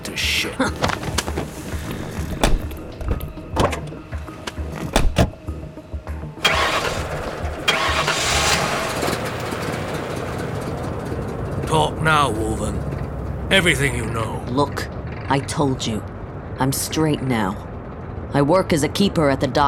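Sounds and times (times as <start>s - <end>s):
car engine starting: 0.0s - 19.6s
speech: 0.4s - 1.6s, 13.5s - 17.7s, 18.3s - 19.6s
sharp clunks and thumps inside a car: 0.8s - 5.5s.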